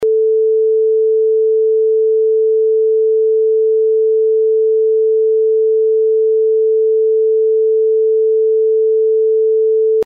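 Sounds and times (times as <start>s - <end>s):
440Hz sine tone at -6dB with 90 degree phase: 0.0s - 10.0s.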